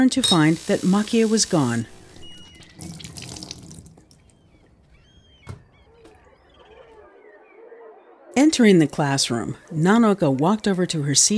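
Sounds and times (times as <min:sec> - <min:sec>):
speech: 0:00.0 - 0:02.0, 0:08.6 - 0:11.3
water gushing from a faucet into a sink while rinsing a skirt: 0:00.1 - 0:04.0.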